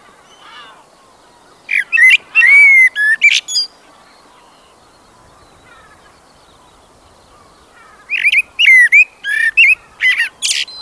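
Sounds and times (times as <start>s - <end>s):
common blackbird singing fluty phrases: 1.6s - 3.7s, 4.4s - 10.7s.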